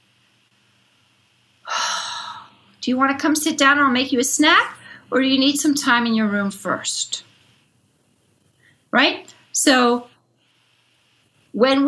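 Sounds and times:
parent inhaling deeply: 0:01.7 - 0:02.5
speech: 0:02.8 - 0:07.3, 0:08.9 - 0:10.1, 0:11.6 - 0:11.8.

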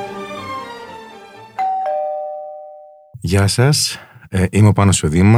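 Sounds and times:
doorbell chiming: 0:01.6 - 0:03.1
speech: 0:03.3 - 0:05.3.

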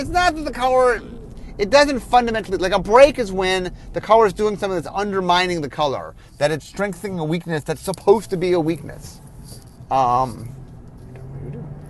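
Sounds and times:
speech: 0:00.0 - 0:09.2, 0:09.9 - 0:10.6
passing road traffic rumble: 0:00.0 - 0:11.8.

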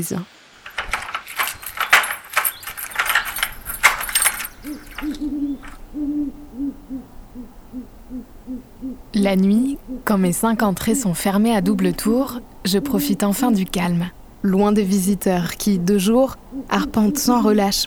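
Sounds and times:
speech: 0:00.0 - 0:00.4, 0:04.6 - 0:17.8
metallic jangling: 0:00.6 - 0:05.9
owl hooting at night: 0:03.0 - 0:17.8.

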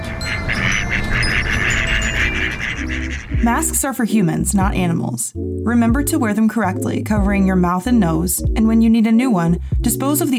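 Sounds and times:
duck quacking: 0:00.1 - 0:03.8
speech: 0:03.4 - 0:10.3.

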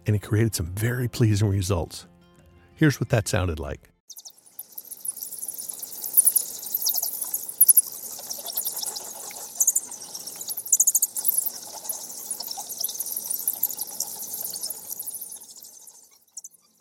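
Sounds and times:
speech: 0:00.0 - 0:02.1, 0:02.8 - 0:04.3
faint fluttering rustle of bat wings: 0:04.1 - 0:16.7
swarm of bats squeaking and chirping: 0:04.1 - 0:16.7.

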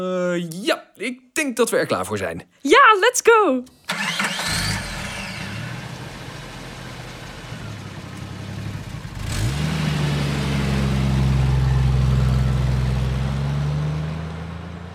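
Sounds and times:
speech: 0:00.0 - 0:04.0
family car engine cranking, idling and revving: 0:03.7 - 0:14.9.

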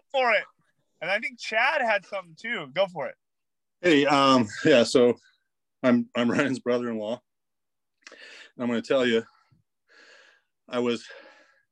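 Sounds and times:
speech: 0:00.1 - 0:03.2, 0:03.8 - 0:07.3, 0:08.1 - 0:09.3, 0:10.7 - 0:11.2
heavy breathing while walking: 0:09.8 - 0:11.7.

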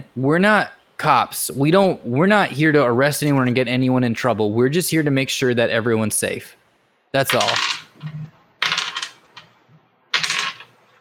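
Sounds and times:
speech: 0:00.2 - 0:08.3
dice rolled during a tabletop role-playing game clattering: 0:07.3 - 0:10.9.

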